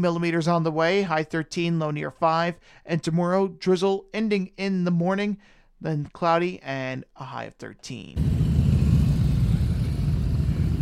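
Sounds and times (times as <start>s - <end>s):
speech: 0.0s - 8.4s
motorcycle engines rumbling arriving at a parking lot: 8.2s - 10.8s.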